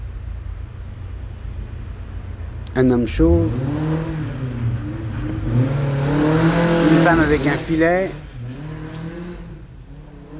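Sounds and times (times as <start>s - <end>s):
street traffic: 0.0s - 10.3s
speech: 2.8s - 4.1s, 7.1s - 8.2s
loud rally car engine revving past: 3.0s - 10.3s.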